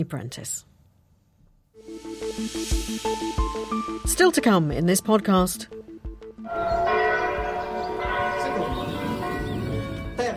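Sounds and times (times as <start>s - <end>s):
speech: 0.0s - 0.7s, 1.8s - 7.0s
church bells rung by bell ringers in a continuous peal: 6.5s - 10.3s.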